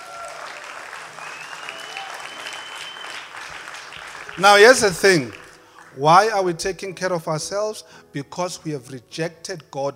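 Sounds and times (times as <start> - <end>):
room full of people applauding: 0.0 - 6.4
whistles: 1.2 - 3.3
speech: 4.4 - 5.4, 6.0 - 9.9.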